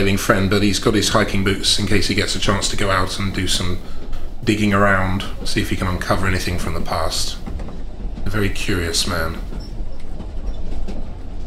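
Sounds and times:
speech: 0.0s - 7.4s, 8.3s - 9.5s
train carriage rolling along the rails: 0.0s - 11.4s
train wheels clattering: 0.0s - 11.4s.

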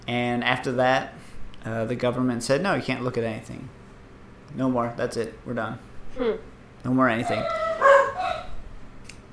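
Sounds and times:
speech: 0.1s - 3.8s, 4.5s - 7.6s
household dog barking and yelping: 7.2s - 8.6s.

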